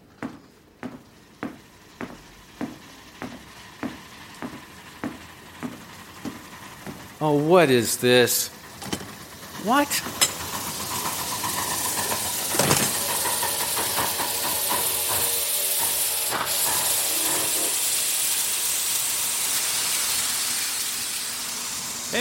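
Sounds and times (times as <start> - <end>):
steam train hissing: 1.2 - 22.1
speech: 7.2 - 8.6, 9.6 - 10.2
sharp bursts of steam: 9.4 - 22.1
steam train clanks: 10.1 - 17.0.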